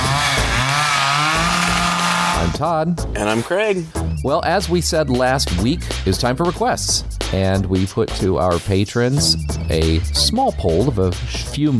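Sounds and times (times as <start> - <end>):
chainsaw revving: 0.0 - 2.6
speech: 2.6 - 11.7.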